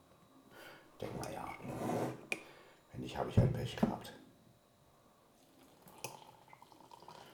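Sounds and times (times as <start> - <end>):
speech: 1.0 - 1.9, 3.1 - 4.2
hot water poured into a container: 5.6 - 7.3.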